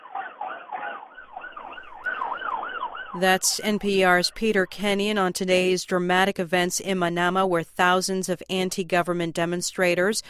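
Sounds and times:
ambulance siren wailing in rising-and-falling yelp pattern in Manama: 0.0s - 4.4s
traffic rumble in Manama: 0.0s - 5.8s
speech: 3.1s - 10.2s.

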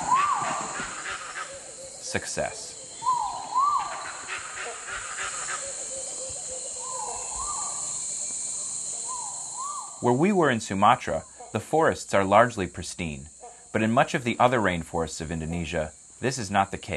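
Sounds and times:
gibbon calling in rainforest: 0.0s - 1.7s, 3.0s - 7.8s
steady high drone of insects: 0.0s - 16.9s
speech: 2.1s - 2.7s, 10.0s - 16.9s.

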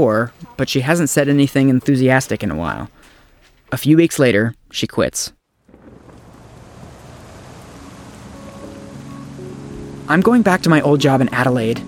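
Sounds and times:
speech: 0.0s - 3.0s, 3.7s - 5.4s, 10.1s - 11.8s
steady rain dripping from an awning: 5.6s - 11.2s.

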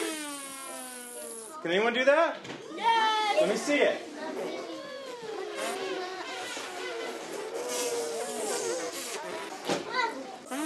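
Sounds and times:
group of children buzzing lips like brass players: 0.0s - 1.6s, 4.3s - 9.7s, 10.4s - 10.6s
speech: 1.6s - 4.5s.

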